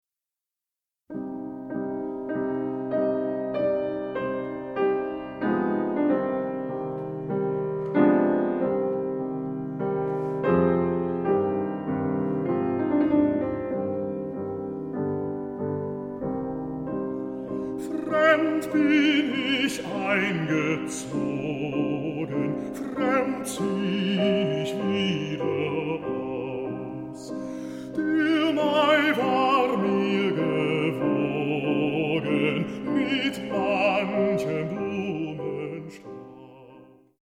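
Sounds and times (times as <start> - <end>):
song: 1.1 - 37.0.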